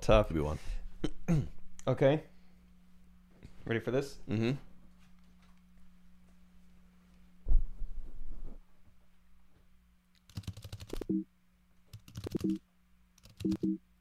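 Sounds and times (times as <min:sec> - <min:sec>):
speech: 0:00.0 - 0:02.3, 0:03.6 - 0:04.7, 0:11.1 - 0:11.3, 0:12.3 - 0:12.6, 0:13.4 - 0:13.8
low steady hum: 0:00.0 - 0:13.9
person imitating keyboard typing with their mouth: 0:10.2 - 0:11.1, 0:11.9 - 0:12.6, 0:13.2 - 0:13.8.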